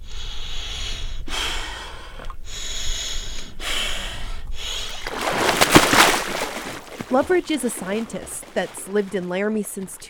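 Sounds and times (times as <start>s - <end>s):
sharp ragged gasping breaths entering cold water: 0.0s - 5.2s
splashy rush of water: 4.8s - 10.0s
speech: 7.1s - 10.0s.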